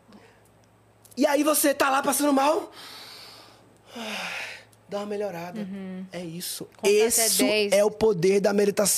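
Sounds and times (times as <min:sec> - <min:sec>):
speech: 0:01.2 - 0:03.0, 0:03.9 - 0:08.9
slow deep breath: 0:02.7 - 0:04.7.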